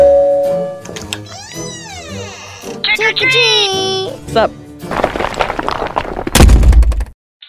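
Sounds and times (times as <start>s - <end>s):
doorbell chime: 0.0s - 0.9s
speech: 3.1s - 4.6s
rocks thrown by teenagers striking a face: 4.9s - 7.1s.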